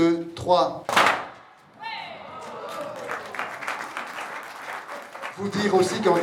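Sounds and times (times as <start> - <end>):
speech: 0.0 - 1.0, 5.4 - 6.2
many small firecrackers crackling amid a crowd: 0.9 - 1.6.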